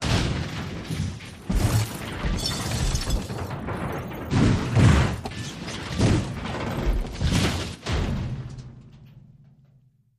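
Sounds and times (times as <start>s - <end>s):
car crashing and rolling over: 0.0s - 9.8s.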